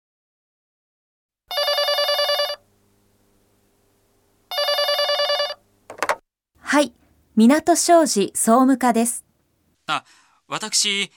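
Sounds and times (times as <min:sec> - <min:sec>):
telephone ringing with electronic trill: 0:01.5 - 0:02.6, 0:04.5 - 0:05.6
speech: 0:06.7 - 0:09.2, 0:09.9 - 0:11.1.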